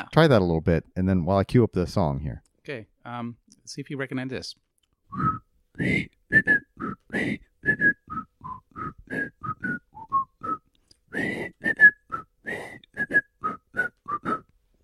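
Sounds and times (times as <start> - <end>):
speech: 0.0 - 9.8
person whistling a song's tune: 5.1 - 14.5.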